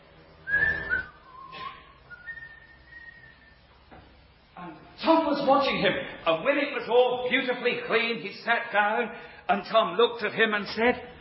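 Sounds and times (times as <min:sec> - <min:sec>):
old man whistling a short tune: 0:00.4 - 0:03.6
speech: 0:05.1 - 0:11.1.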